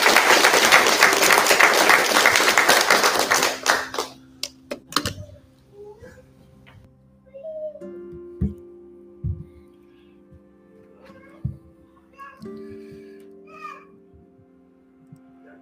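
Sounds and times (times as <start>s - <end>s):
crowd applauding: 0.0s - 4.3s.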